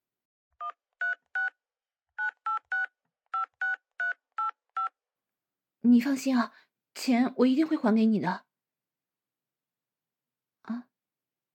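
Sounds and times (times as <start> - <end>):
telephone keypad tones dialing a phone number: 2.2 - 4.9
speech: 5.8 - 8.5, 10.7 - 10.9.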